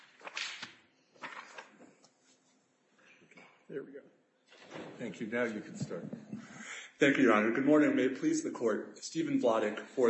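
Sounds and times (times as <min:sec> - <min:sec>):
speech: 0:03.7 - 0:06.4, 0:07.0 - 0:10.0
door being shut: 0:04.5 - 0:05.2.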